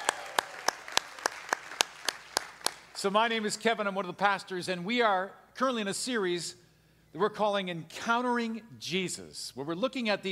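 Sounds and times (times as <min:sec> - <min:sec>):
rhythmic clapping at a church service: 0:00.0 - 0:03.2
speech: 0:03.0 - 0:10.3.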